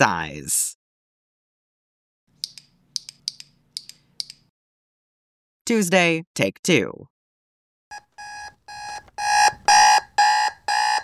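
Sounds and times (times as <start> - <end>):
speech: 0.0 - 0.8, 5.7 - 7.1
electronic alarm clock beeping: 7.9 - 11.0.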